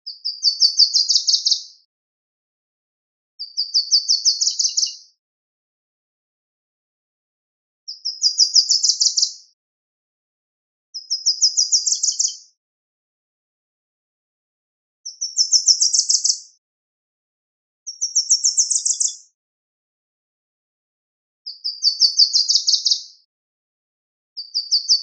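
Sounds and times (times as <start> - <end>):
small birds singing trilled phrases: 0.1 - 1.7, 3.4 - 5.1, 7.9 - 9.5, 11.0 - 12.5, 15.0 - 16.5, 17.9 - 19.2, 21.5 - 23.1, 24.4 - 25.0.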